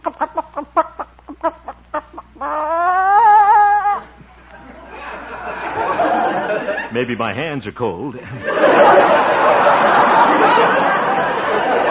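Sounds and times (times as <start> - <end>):
hen giving a long wavering squawk: 0.0 - 4.2
laughter: 0.0 - 7.1, 8.2 - 11.8
speech: 7.0 - 11.8.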